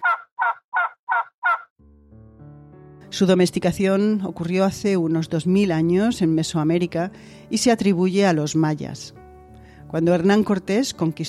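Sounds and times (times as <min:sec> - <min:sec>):
wild turkey gobbling: 0:00.0 - 0:01.7
speech: 0:03.1 - 0:09.2, 0:09.9 - 0:11.2.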